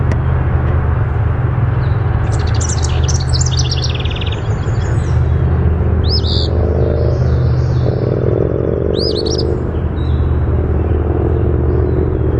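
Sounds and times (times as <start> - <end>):
constant deep engine-like droning: 0.0 - 12.3
Eastern phoebe singing brisk high looping song phrases: 1.8 - 12.3
Eastern phoebe chips: 2.2 - 5.4, 6.0 - 8.2, 8.9 - 9.6.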